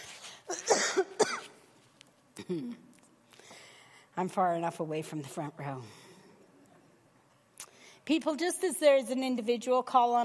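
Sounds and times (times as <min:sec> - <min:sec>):
person clearing throat: 0:00.5 - 0:01.6, 0:02.4 - 0:02.9
person coughing raspily: 0:00.5 - 0:01.6, 0:02.4 - 0:02.8
speech: 0:02.5 - 0:02.9, 0:04.2 - 0:06.0, 0:08.1 - 0:10.2.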